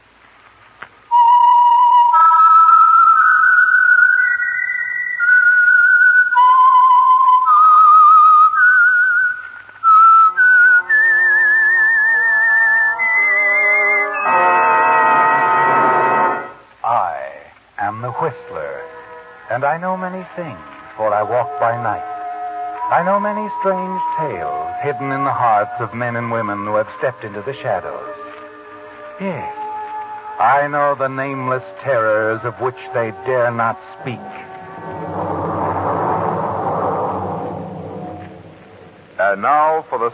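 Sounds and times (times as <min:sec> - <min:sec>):
whistled signature tune: 0:01.1 - 0:16.6, 0:20.4 - 0:38.9
orchestral accompaniment: 0:10.7 - 0:16.7, 0:18.1 - 0:39.8
speech: 0:19.6 - 0:22.1, 0:22.9 - 0:28.2, 0:29.2 - 0:29.6, 0:30.4 - 0:34.4, 0:39.4 - 0:40.1.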